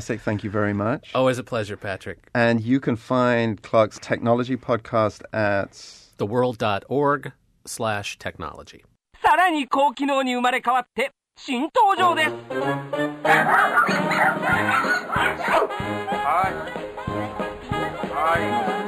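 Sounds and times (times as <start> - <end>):
speech: 0.0 - 16.8
upbeat music with a steady bass line: 12.2 - 18.8
dog barking and yipping: 13.2 - 16.4.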